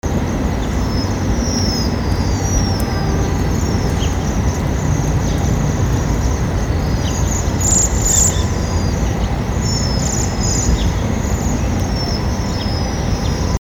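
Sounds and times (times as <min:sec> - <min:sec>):
loud steady low rumble: 0:00.0 - 0:13.6
Japanese waxwings giving thin high calls: 0:00.4 - 0:13.6.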